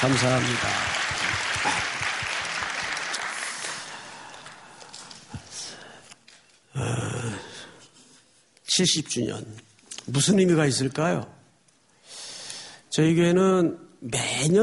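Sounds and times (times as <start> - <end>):
speech: 0.0 - 1.0, 8.8 - 11.4, 13.0 - 14.6
crowd applauding warmly: 0.0 - 4.8.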